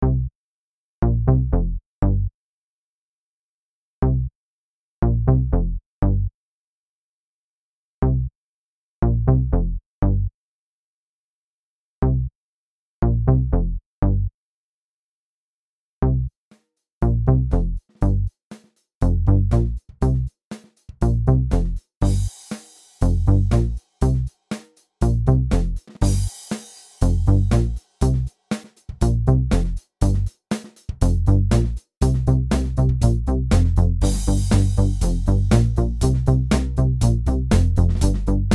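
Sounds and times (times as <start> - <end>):
bass: 0.0 - 0.3, 1.0 - 2.3, 4.0 - 4.3, 5.0 - 6.3, 8.0 - 8.3, 9.0 - 10.3, 12.0 - 12.3, 13.0 - 14.3, 16.0 - 16.3, 17.0 - 18.4, 19.0 - 20.4, 21.0 - 22.4, 23.0 - 24.4, 25.0 - 26.4, 27.0 - 38.5
drums: 17.5 - 38.5.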